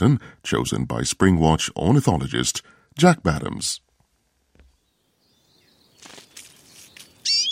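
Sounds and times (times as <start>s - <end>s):
speech: 0.0s - 3.8s
siskin calls and twittering song: 4.6s - 7.5s.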